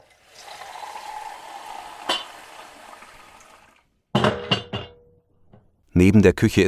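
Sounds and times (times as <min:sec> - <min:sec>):
tap water filling a kettle in a kitchen: 0:00.0 - 0:03.9
speech: 0:06.0 - 0:06.6.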